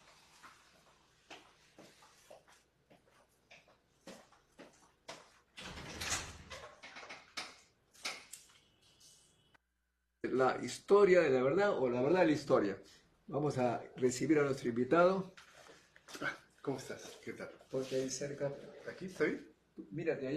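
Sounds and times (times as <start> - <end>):
door being opened with clicks, rattles and handling knocks: 5.6 - 7.4
speech: 10.3 - 15.4, 16.7 - 20.3.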